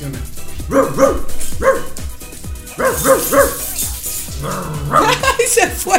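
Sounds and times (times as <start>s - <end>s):
dog barking: 0.6s - 2.0s, 2.7s - 3.8s
laughter: 5.0s - 5.9s.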